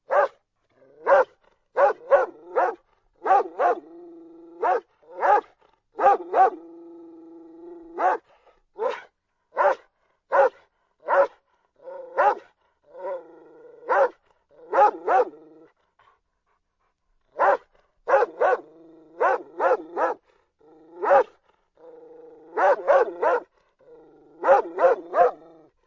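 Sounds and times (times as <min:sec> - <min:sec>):
one dog barking: 0:00.0 - 0:00.4, 0:01.0 - 0:03.9, 0:04.6 - 0:06.6, 0:08.0 - 0:13.2, 0:13.8 - 0:15.4, 0:17.3 - 0:20.2, 0:21.0 - 0:21.4, 0:22.5 - 0:23.5, 0:24.4 - 0:25.5.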